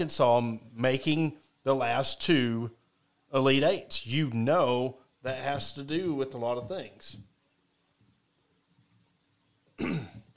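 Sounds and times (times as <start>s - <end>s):
speech: 0.0s - 7.3s, 9.8s - 10.2s
rough cough: 9.8s - 10.3s.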